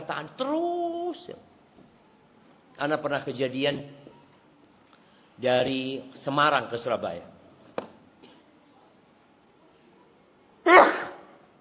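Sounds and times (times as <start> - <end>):
speech: 0.1 - 1.5, 2.8 - 4.0, 5.4 - 7.3
sneeze: 10.6 - 11.4.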